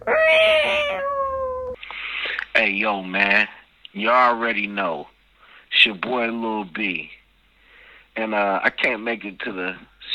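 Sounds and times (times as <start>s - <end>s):
cat meowing: 0.0s - 1.8s
speech: 2.6s - 5.1s, 5.8s - 7.2s, 8.2s - 9.9s.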